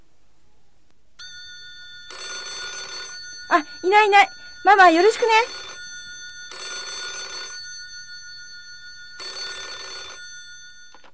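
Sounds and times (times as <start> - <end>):
telephone ringing with electronic trill: 1.2 - 11.1
speech: 3.5 - 5.6.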